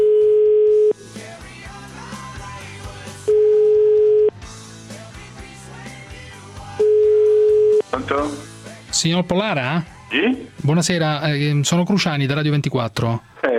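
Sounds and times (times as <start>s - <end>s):
telephone ringing tone on an outgoing call to an Italian line: 0.0s - 1.0s, 3.3s - 4.4s, 6.8s - 7.9s
music: 0.9s - 13.4s
speech: 9.0s - 13.3s.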